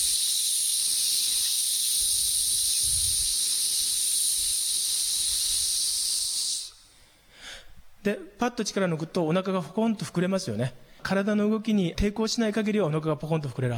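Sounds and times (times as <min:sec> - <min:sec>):
long steady hissing exhale through the teeth as a breathing exercise: 0:00.0 - 0:07.5
speech: 0:08.0 - 0:13.7.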